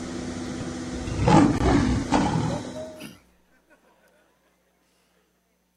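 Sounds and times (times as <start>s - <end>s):
steady hum: 0.2s - 5.7s
lion letting out a deep rumbling roar: 0.9s - 2.9s.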